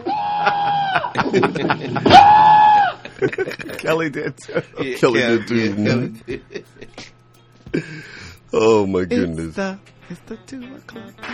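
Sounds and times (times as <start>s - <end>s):
person imitating a caller's screaming with shrill wavering cries: 0.0s - 1.1s, 2.1s - 3.0s
laughter: 0.0s - 8.1s
speech: 1.3s - 2.4s, 3.2s - 11.3s.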